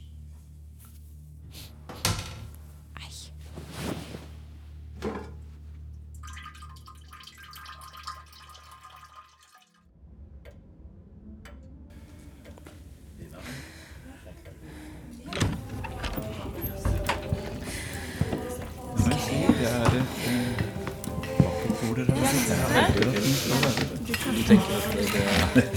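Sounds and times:
laughter: 0:13.2 - 0:25.7
knocks and clunks: 0:15.3 - 0:21.9.

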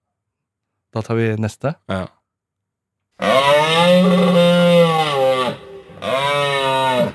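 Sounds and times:
speech: 0:00.9 - 0:02.2, 0:03.2 - 0:04.6
moose call bellowing: 0:03.2 - 0:07.1.

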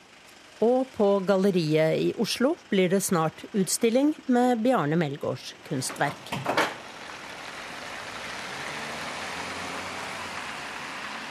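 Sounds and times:
speech: 0:00.6 - 0:06.6
car driving away: 0:06.0 - 0:11.2.

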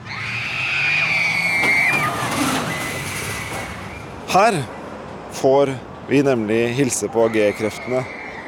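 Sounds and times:
riders screaming on a roller coaster: 0:00.0 - 0:04.1, 0:07.1 - 0:08.4
speech: 0:04.3 - 0:04.8, 0:05.4 - 0:08.2.

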